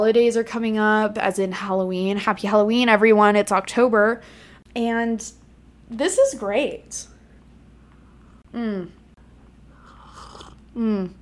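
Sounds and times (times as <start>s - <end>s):
speech: 0.0s - 7.1s, 8.5s - 9.0s, 10.8s - 11.1s
person slurping a hot drink close to the microphone: 9.7s - 10.8s.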